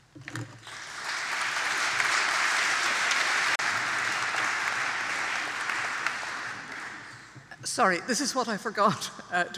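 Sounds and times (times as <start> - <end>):
crowd applauding: 0.6 - 7.4
speech: 7.7 - 9.5.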